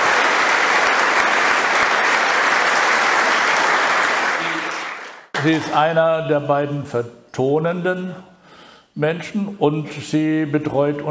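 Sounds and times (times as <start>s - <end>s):
dense audience applause welcoming someone being introduced: 0.0s - 5.7s
speech: 5.4s - 8.3s, 9.0s - 11.0s.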